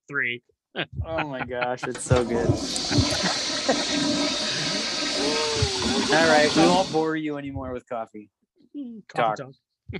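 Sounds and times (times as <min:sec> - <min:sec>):
speech: 0:00.1 - 0:09.9
laughter: 0:01.0 - 0:08.0, 0:09.2 - 0:09.4
toilet flushing with gurgling swirls of water: 0:01.9 - 0:07.1.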